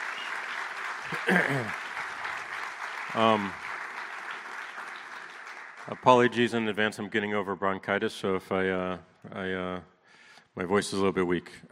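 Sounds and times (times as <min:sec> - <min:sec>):
crowd applauding: 0:00.0 - 0:06.8
speech: 0:01.1 - 0:01.8, 0:03.1 - 0:03.6, 0:05.8 - 0:09.9, 0:10.6 - 0:11.7.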